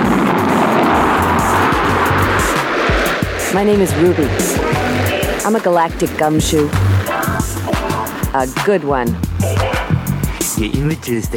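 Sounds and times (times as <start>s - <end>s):
futuristic air car blasting off with protective shield switched on: 0.0s - 8.3s
speech: 3.5s - 4.8s, 5.5s - 6.9s, 8.4s - 9.7s, 10.6s - 11.3s.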